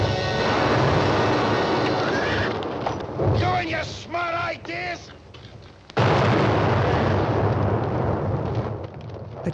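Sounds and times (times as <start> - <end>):
mountain exploding: 0.2 - 3.8, 6.0 - 9.5
heavy rumble of falling debris: 0.5 - 4.9, 5.6 - 9.5.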